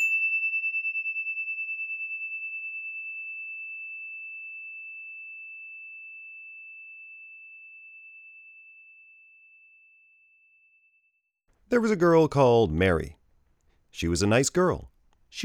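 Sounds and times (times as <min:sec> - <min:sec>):
bell struck, high tone ringing: 0:00.0 - 0:10.9
speech: 0:11.7 - 0:13.2, 0:14.0 - 0:15.4.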